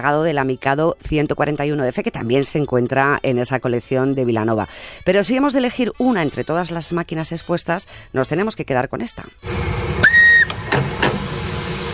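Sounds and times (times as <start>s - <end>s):
speech: 0.0s - 10.2s
replica steam locomotive whistle blast: 9.4s - 11.9s.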